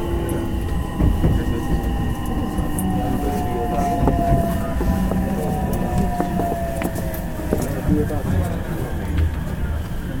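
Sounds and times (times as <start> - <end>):
faint whining electric train motor tones: 0.0 - 9.8
voices onboard a rapid electric commuter train: 0.0 - 10.1
wheels rumbling on rail of a rapid electric commuter train in motion: 0.0 - 10.1.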